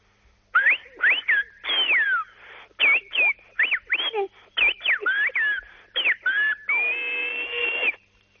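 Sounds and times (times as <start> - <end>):
whistled-language greeting wishing good morning: 0.6 - 8.0.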